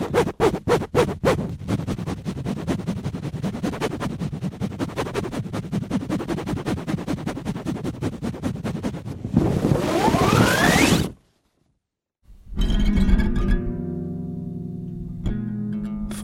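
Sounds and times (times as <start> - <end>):
microphone scraping deckchair canvas: 0.0 - 11.2
guitar strings ringing: 12.5 - 16.2.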